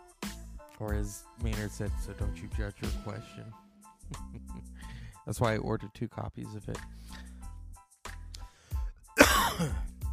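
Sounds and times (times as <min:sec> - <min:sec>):
speech: 0:00.8 - 0:07.3, 0:09.6 - 0:09.9
person clearing throat: 0:09.2 - 0:10.0
person coughing: 0:09.2 - 0:10.0.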